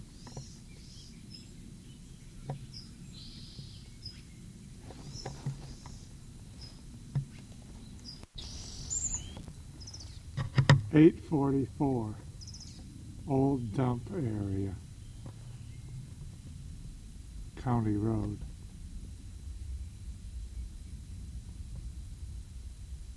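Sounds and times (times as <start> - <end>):
small bird chipping in alarm after being disturbed: 0.0 - 16.4
low rumbling background: 0.0 - 23.1
speech: 11.0 - 12.2, 13.3 - 14.8, 17.6 - 18.5.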